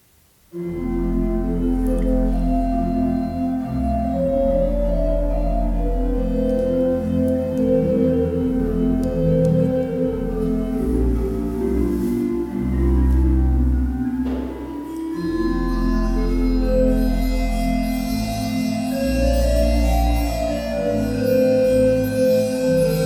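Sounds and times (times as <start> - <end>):
church organ music with zimbelstern and flute stop in Worringen: 0.5 - 23.0.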